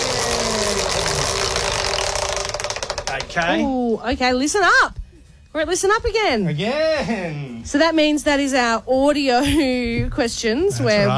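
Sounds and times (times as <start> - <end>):
prize wheel spinning with ratchet clicking in a game: 0.0 - 3.6
speech: 3.3 - 11.1.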